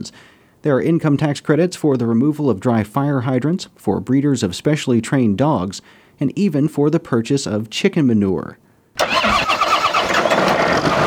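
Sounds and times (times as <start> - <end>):
speech: 0.0 - 9.2
farm tractor engine starting on a spinach field in eastern Oklahoma: 9.0 - 11.0.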